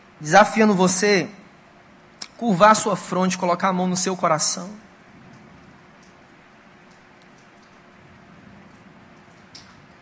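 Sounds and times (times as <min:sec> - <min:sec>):
speech: 0:00.2 - 0:01.4, 0:02.4 - 0:04.9
steady rain falling: 0:04.9 - 0:10.0.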